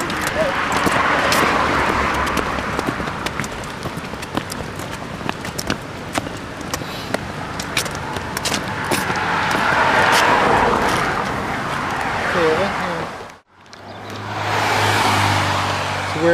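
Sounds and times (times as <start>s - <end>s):
faint voices: 0.0s - 1.8s
cars passing along a road: 0.0s - 16.3s
tire and engine whoosh of passing vehicles: 0.0s - 16.3s.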